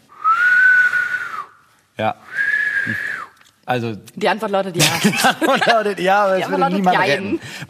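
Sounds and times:
loud shrill whistle through the fingers: 0.1s - 1.6s, 2.3s - 3.4s
speech: 2.0s - 3.1s, 3.7s - 7.6s
laughter: 4.8s - 7.4s.

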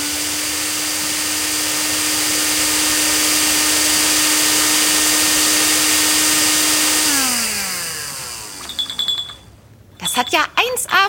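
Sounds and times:
immersion blender pureeing peeled and pitted fruit flesh for sorbet: 0.0s - 9.1s
speech: 10.2s - 11.0s.

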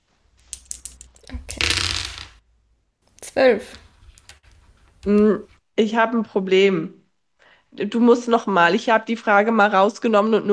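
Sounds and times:
dice being rolled: 0.4s - 2.4s
speech: 3.4s - 3.8s, 5.0s - 7.0s, 7.7s - 10.5s.

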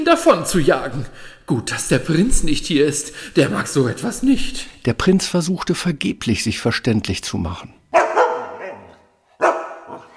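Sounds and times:
speech: 0.0s - 8.0s
dog barking: 7.9s - 10.1s.

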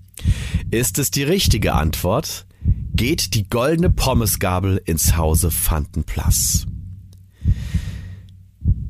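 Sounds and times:
deep breath in: 0.2s - 0.7s, 7.3s - 8.3s
low dull thumps: 0.2s - 8.8s
speech: 0.7s - 6.7s.

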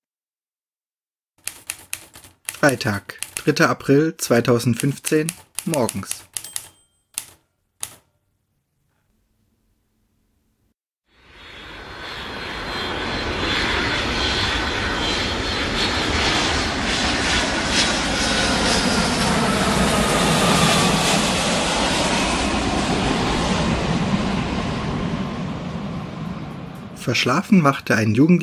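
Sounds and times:
sharp clicks: 1.4s - 3.7s, 4.6s - 8.1s
speech: 2.6s - 6.3s, 27.1s - 28.4s
airplane engine roar with a broad rushing hiss after landing: 11.2s - 28.4s.

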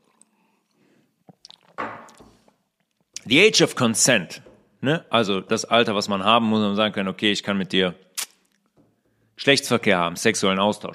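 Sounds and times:
person taking a quick drink: 0.0s - 2.3s
speech: 3.3s - 8.1s, 9.4s - 10.9s
mouth clicks: 8.2s - 8.6s.

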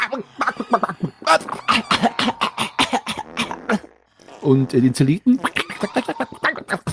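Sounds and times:
harsh groaning: 0.0s - 6.9s
speech: 0.1s - 0.9s, 4.5s - 5.5s
rough hacking coughs: 0.4s - 3.9s, 5.4s - 6.9s.

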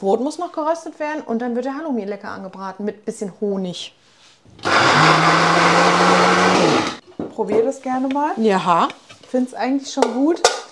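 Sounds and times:
speech: 0.0s - 10.6s
blender mixing ingredients into a paste: 4.5s - 7.0s.

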